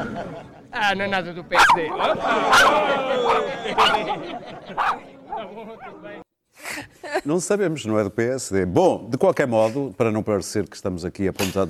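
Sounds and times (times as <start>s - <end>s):
laughter: 0.0s - 0.9s, 1.9s - 7.4s
speech: 0.2s - 11.6s
dog barking: 3.3s - 4.0s, 4.8s - 5.4s.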